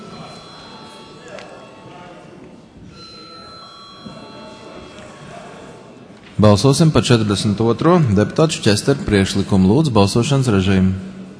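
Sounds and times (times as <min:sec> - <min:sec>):
parliament chamber bell ringing before vote: 0:00.0 - 0:01.7, 0:02.9 - 0:05.1
murmur of voices: 0:00.0 - 0:11.3
room noise: 0:00.0 - 0:11.3
speech: 0:06.4 - 0:11.2.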